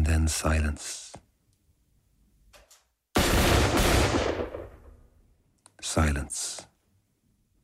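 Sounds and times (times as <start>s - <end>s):
speech: 0.2s - 1.0s, 5.8s - 6.7s
rifle fire volley: 3.2s - 5.1s
rumbling echo of rifle fire: 3.2s - 5.2s.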